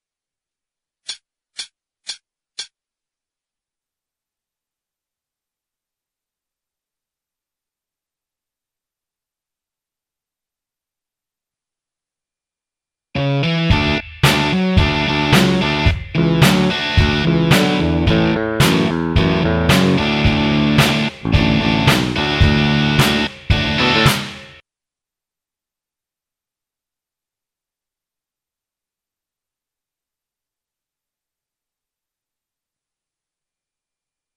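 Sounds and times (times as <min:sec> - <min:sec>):
intro backing track: 0:13.2 - 0:24.6.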